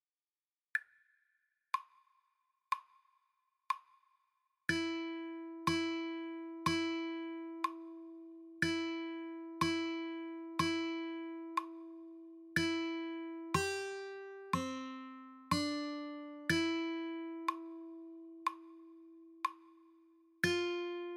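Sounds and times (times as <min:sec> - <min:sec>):
slow Christmas tune on guitar: 0:04.8 - 0:18.5, 0:20.5 - 0:21.1.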